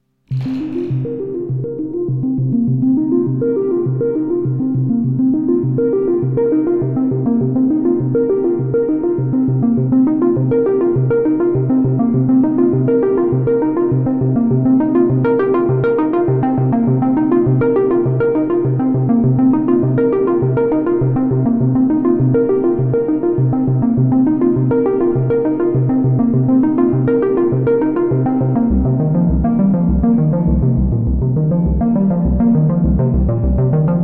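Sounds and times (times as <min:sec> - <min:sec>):
Moog Grandmother synthesizer: 0:00.3 - 0:34.0.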